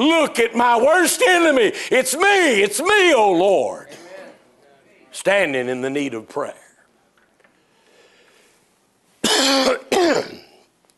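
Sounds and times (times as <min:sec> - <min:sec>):
speech: 0:00.0 - 0:04.0, 0:05.2 - 0:06.6, 0:09.5 - 0:10.3
loud raspy throat-clearing coughs: 0:09.2 - 0:10.6.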